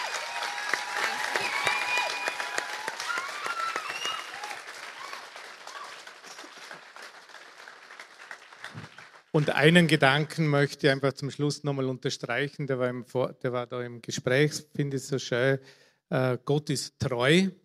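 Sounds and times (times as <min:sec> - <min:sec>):
faint cheering: 0:00.0 - 0:06.5
audience applause: 0:00.0 - 0:09.9
speech: 0:09.4 - 0:17.6.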